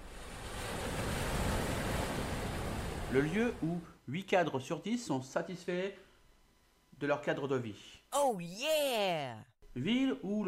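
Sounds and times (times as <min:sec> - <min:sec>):
ocean waves washing against the shore: 0:00.0 - 0:03.1
wind: 0:00.0 - 0:03.2
speech: 0:03.1 - 0:06.0, 0:07.0 - 0:10.4.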